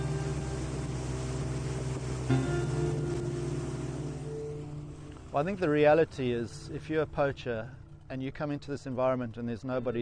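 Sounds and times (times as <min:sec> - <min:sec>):
river water noise: 0:00.0 - 0:08.1
patrol boat motor droning on a river: 0:00.0 - 0:09.3
speech: 0:05.4 - 0:09.9.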